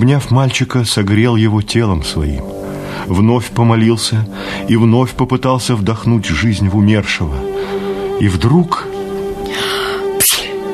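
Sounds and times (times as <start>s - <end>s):
speech: 0.0s - 8.9s
child sneezing on a bed in a room: 10.2s - 10.6s.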